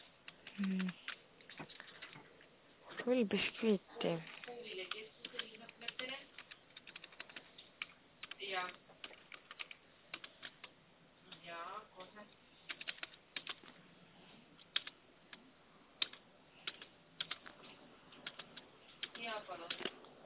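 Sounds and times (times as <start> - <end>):
typing on a computer keyboard: 0.2 - 2.3, 4.2 - 11.5, 12.7 - 13.7, 14.6 - 15.4, 16.0 - 20.0
speech: 0.6 - 1.1, 3.1 - 4.4.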